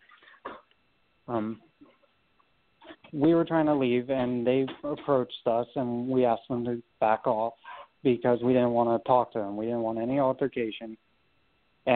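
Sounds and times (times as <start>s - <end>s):
speech: 1.3s - 1.7s, 3.1s - 11.0s
dog huffing while playing: 7.6s - 7.9s.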